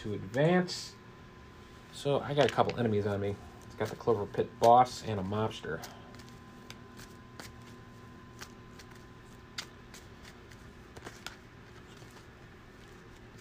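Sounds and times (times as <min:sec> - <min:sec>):
speech: 0:00.0 - 0:01.0, 0:02.0 - 0:06.0
steady low electrical hum: 0:00.0 - 0:13.4
deck of cards being shuffled: 0:03.7 - 0:13.4.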